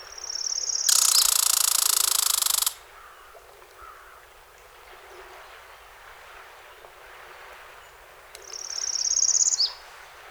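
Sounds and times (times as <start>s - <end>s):
northern parula singing a high buzzy trill: 0.2s - 2.9s.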